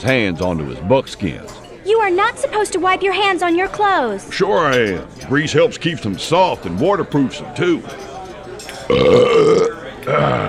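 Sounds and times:
speech: 0.0s - 8.1s, 8.9s - 10.4s
person belching after a meal: 8.9s - 10.4s.

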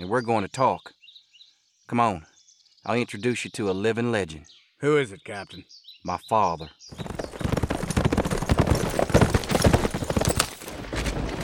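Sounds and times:
speech: 0.0s - 1.0s, 1.9s - 7.2s
horses trotting, hooves clip-clopping: 6.9s - 11.4s.

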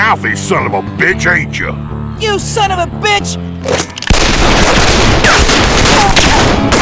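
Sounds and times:
speech: 0.1s - 4.9s
gunfire barrage: 4.1s - 6.7s.

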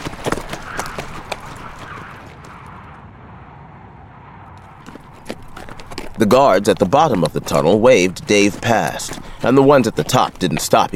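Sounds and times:
trotting horse hooves clip-clopping: 0.0s - 2.8s, 4.6s - 10.9s
low rumble: 0.6s - 6.2s
speech: 6.2s - 10.9s.

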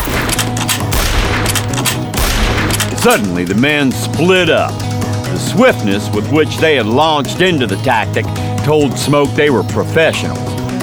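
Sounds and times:
rifle gunfire aimed at a charging horse: 0.0s - 3.3s
heavy low booms: 0.0s - 3.6s
speech: 3.0s - 10.5s.

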